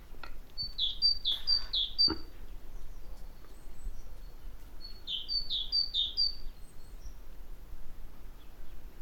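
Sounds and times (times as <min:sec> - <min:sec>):
great tit Parus major song: 0:00.5 - 0:06.5.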